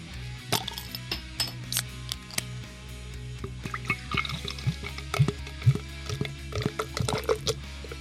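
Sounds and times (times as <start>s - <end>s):
beer cans cracked open: 0.5s - 2.6s, 3.7s - 7.9s
beer pouring and fizzing: 3.5s - 7.9s.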